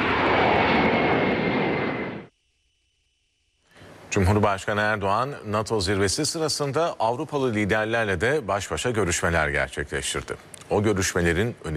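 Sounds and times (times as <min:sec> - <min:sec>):
presidential jet aircraft engine roar departing Esenboğa Airport: 0:00.0 - 0:02.3
speech: 0:04.1 - 0:11.7.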